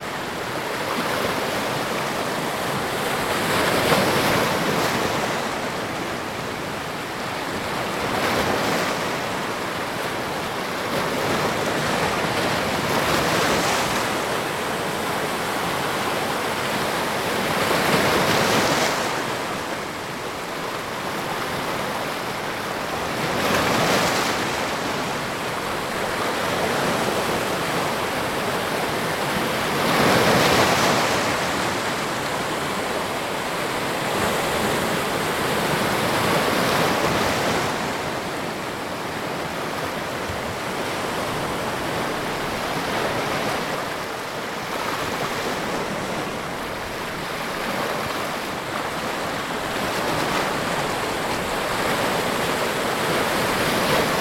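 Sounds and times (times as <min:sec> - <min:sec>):
ocean waves on rocks: 0:00.0 - 0:54.2.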